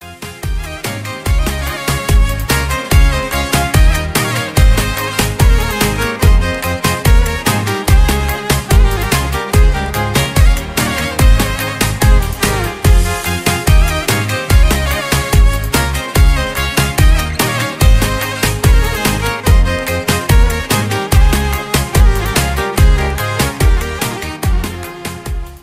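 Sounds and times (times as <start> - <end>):
violin remix music: 0.0 - 25.6.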